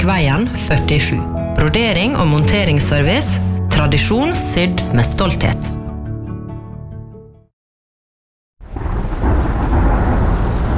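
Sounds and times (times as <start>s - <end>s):
speech: 0.0s - 5.8s
music: 0.0s - 7.5s
deep rolling thunder rumble: 8.6s - 10.7s
heavy rain: 8.6s - 10.7s.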